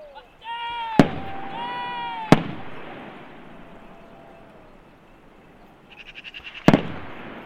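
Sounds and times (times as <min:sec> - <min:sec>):
distant hunting shotgun shots on a hillside: 0:01.0 - 0:04.3, 0:06.4 - 0:07.4
tonal animal-like calls: 0:01.2 - 0:06.9.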